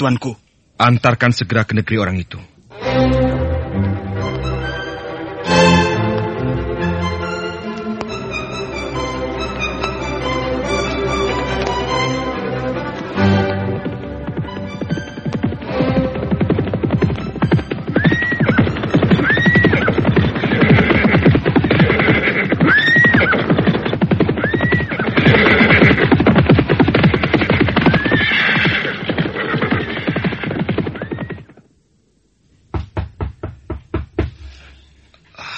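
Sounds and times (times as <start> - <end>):
speech: 0.0 - 3.9
horse hooves clattering: 5.8 - 31.7, 32.7 - 34.6
horses whinnying and neighing: 13.8 - 31.7.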